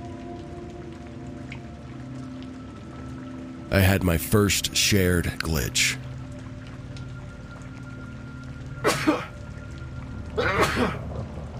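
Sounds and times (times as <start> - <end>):
speech: 3.7 - 6.1
person sneezing: 8.9 - 9.3, 10.4 - 11.0.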